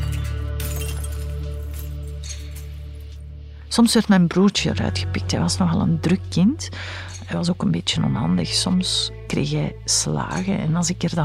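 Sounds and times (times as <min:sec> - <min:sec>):
crystal glass shattering on a hard floor: 0:00.0 - 0:03.2
speech: 0:03.7 - 0:11.2.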